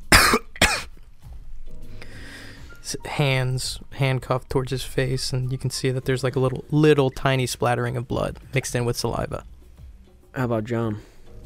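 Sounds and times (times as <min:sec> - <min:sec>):
man coughing: 0:00.1 - 0:00.9
speech: 0:02.9 - 0:09.5, 0:10.4 - 0:11.1.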